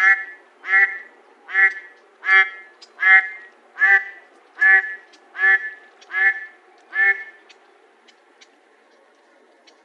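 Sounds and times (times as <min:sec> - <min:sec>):
mallard quacking: 0:00.0 - 0:07.4.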